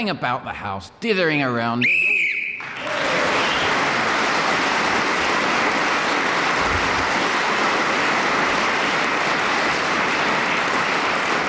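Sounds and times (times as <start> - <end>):
speech: 0.0 - 2.2
shrill whistle blast ending the round: 1.8 - 2.7
applause: 2.6 - 11.4.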